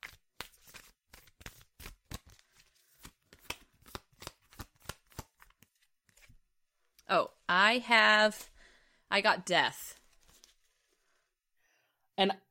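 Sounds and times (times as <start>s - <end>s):
tarot cards being shuffled and drawn: 0.0s - 6.4s, 9.9s - 11.0s
speech: 7.1s - 8.5s, 9.1s - 10.0s, 12.2s - 12.5s.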